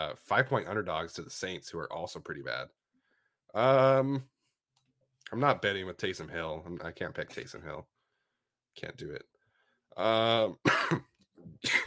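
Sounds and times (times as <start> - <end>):
speech: 0.0 - 2.8, 3.5 - 4.3, 5.3 - 7.9, 8.8 - 9.3, 10.0 - 11.8
man clearing throat: 10.4 - 11.8
man coughing: 10.6 - 11.8.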